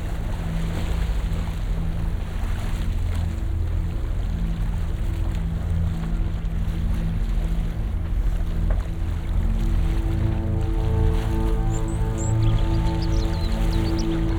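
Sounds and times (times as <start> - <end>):
dense steady low rumble of water sounds driven by Venice tide data: 0.0 - 14.3
droning tones: 7.0 - 14.3
faint bright rising chirps: 10.4 - 14.3.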